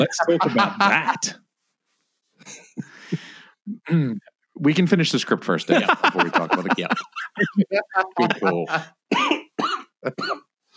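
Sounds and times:
laughter: 0:00.0 - 0:01.4, 0:05.7 - 0:09.0
speech: 0:00.0 - 0:01.4, 0:03.9 - 0:09.4, 0:10.0 - 0:10.7
person coughing harshly: 0:08.2 - 0:10.5.

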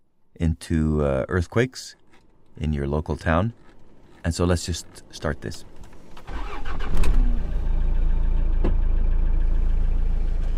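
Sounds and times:
speech: 0:00.4 - 0:02.0, 0:02.6 - 0:03.6, 0:04.2 - 0:05.7
car engine rumbling while driving: 0:04.9 - 0:10.5
car engine cranking and starting: 0:05.7 - 0:10.5.

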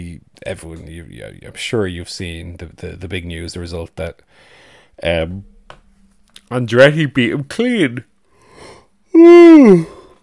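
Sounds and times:
speech: 0:00.1 - 0:05.8, 0:06.5 - 0:08.1, 0:09.2 - 0:10.0
person yawning: 0:09.1 - 0:10.2.

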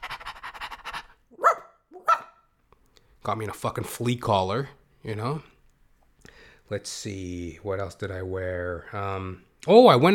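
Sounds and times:
man imitating dog panting: 0:00.0 - 0:01.2
man imitating dog barks: 0:01.4 - 0:02.4
speech: 0:03.2 - 0:05.5, 0:06.7 - 0:10.1.

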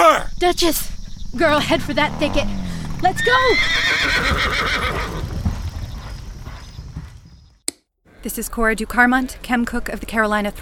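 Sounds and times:
speech: 0:00.4 - 0:05.2, 0:08.2 - 0:10.6
horse with a rider whinnying: 0:01.4 - 0:06.1
horse hooves clip-clopping: 0:01.5 - 0:07.6.

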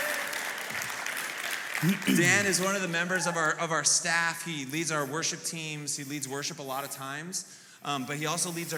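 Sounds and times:
audience applauding: 0:00.0 - 0:03.5
speech: 0:01.8 - 0:08.7.

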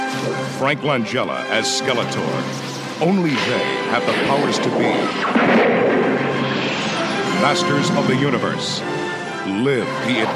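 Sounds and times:
speech: 0:00.2 - 0:05.9, 0:07.4 - 0:10.3
explosions in a movie trailer: 0:03.4 - 0:08.9
heavy crashing impacts: 0:03.4 - 0:08.9.

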